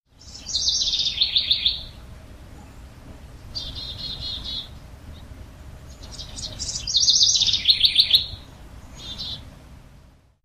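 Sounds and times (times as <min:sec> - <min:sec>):
chickadee calling: 0:00.1 - 0:02.1, 0:03.4 - 0:09.5
House wren singing: 0:00.1 - 0:09.7.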